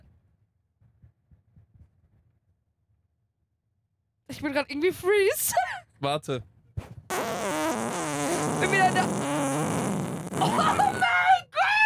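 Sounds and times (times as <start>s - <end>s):
speech: 4.3s - 7.5s, 8.6s - 9.3s, 10.4s - 11.0s
long fart: 7.1s - 11.0s.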